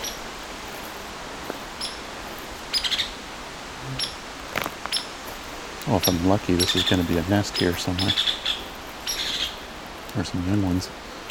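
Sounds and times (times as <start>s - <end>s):
steady background hiss: 0.0s - 11.2s
female Hairy Woodpecker giving sharp high calls: 1.8s - 2.0s, 4.0s - 4.2s, 6.0s - 9.7s
speech: 5.9s - 8.4s, 10.2s - 11.0s.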